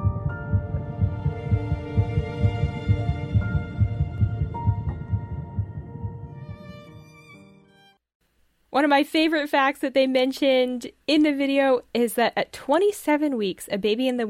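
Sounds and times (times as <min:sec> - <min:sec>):
fast fetal heartbeat: 0:00.0 - 0:06.8
speech: 0:08.8 - 0:14.2.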